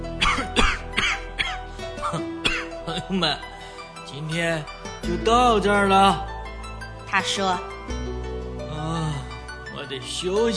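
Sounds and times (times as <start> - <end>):
short raspy coughs from a tired white fox: 0.2 - 3.0
speech: 3.1 - 3.5, 4.1 - 6.3, 7.1 - 8.0, 9.9 - 10.5.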